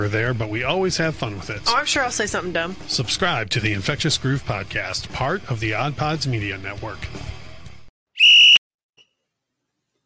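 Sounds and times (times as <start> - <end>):
speech: 0.0 - 7.3
referee's whistle blown to start the third quarter: 8.2 - 8.6.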